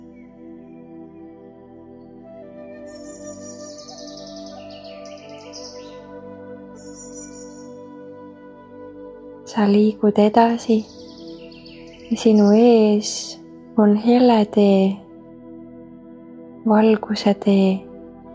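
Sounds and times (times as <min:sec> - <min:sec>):
birds singing in forest trees: 0:00.0 - 0:08.0, 0:09.5 - 0:14.6
speech: 0:09.5 - 0:10.9, 0:12.1 - 0:15.0, 0:16.7 - 0:17.9.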